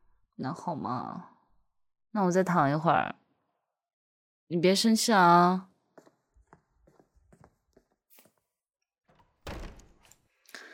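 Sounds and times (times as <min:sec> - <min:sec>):
speech: 0:00.4 - 0:01.3, 0:02.1 - 0:03.2, 0:04.5 - 0:05.7
door slamming shut loudly: 0:09.1 - 0:10.2.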